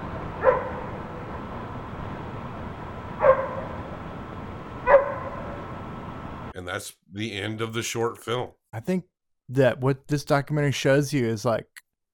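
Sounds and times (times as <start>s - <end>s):
steady low rumble: 0.0s - 6.5s
dog barking: 0.4s - 1.0s, 3.2s - 3.8s, 4.8s - 5.5s
speech: 6.6s - 11.8s.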